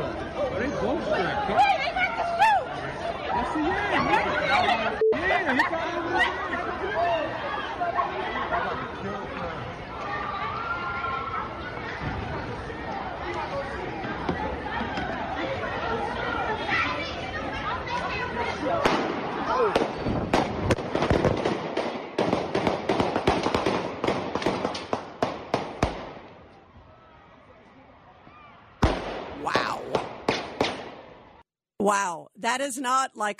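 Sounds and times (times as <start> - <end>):
noisy crowd on South Street in Philadelphia: 0.0 - 31.4
speech: 5.5 - 6.5, 31.9 - 33.3
rapid gunshots from multiple shooters: 19.8 - 26.2.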